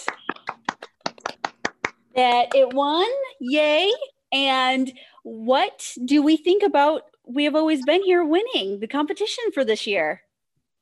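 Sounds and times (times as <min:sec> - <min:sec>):
small group applauding: 0:00.0 - 0:02.9
speech: 0:02.2 - 0:10.2.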